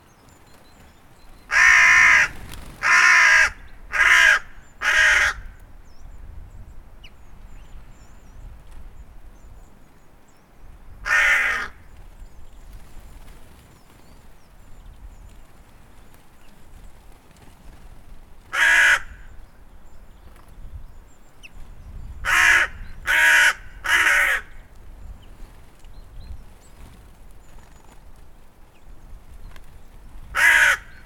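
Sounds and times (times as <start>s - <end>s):
hooded crow calling: 1.5s - 5.6s, 11.0s - 11.9s, 18.5s - 19.4s, 22.2s - 24.7s, 30.3s - 31.0s.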